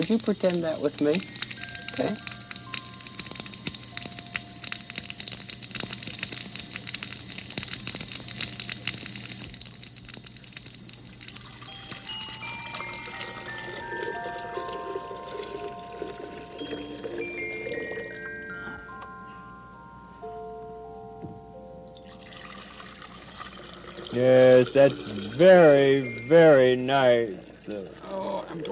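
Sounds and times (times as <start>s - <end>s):
soft tinkling musical notes stepping up and down: 0.0s - 5.5s, 11.6s - 23.3s, 24.1s - 27.8s
water poured back and forth, rushing: 0.0s - 18.6s, 22.0s - 28.1s
speech: 0.1s - 1.4s, 2.0s - 2.3s, 24.2s - 28.0s, 28.6s - 28.7s.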